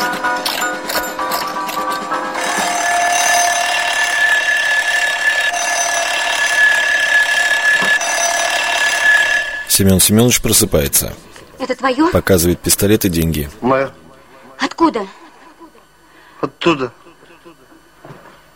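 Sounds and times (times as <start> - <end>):
ratcheting clicks of an alarm clock being wound: 0.0 - 9.8
speech: 9.8 - 14.0, 14.7 - 15.2, 16.6 - 17.0.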